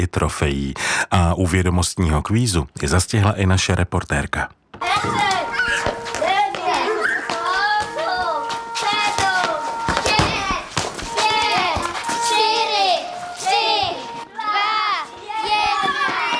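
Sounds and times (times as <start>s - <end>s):
speech: 0.0s - 5.4s
crowd of children chattering and calling out at a hunting camp: 4.8s - 16.3s.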